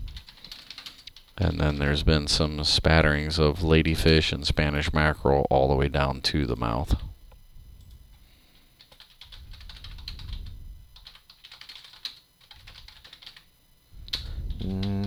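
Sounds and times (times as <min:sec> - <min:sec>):
low hum: 0:00.0 - 0:15.0
rapid typing on a computer keyboard: 0:00.1 - 0:01.3, 0:08.8 - 0:13.5
speech: 0:01.4 - 0:07.0.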